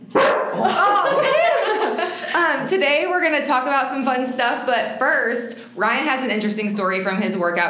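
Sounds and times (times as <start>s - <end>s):
dog barking and yowling: 0.1s - 0.6s
laughter: 0.5s - 2.7s
speech: 2.7s - 7.6s.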